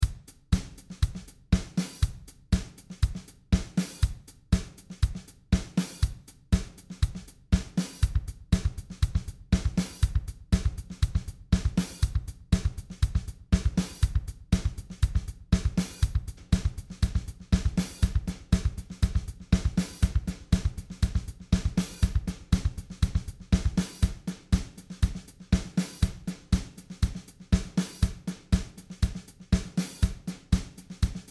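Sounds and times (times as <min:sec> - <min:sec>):
drums with delay effect: 0:00.0 - 0:31.2.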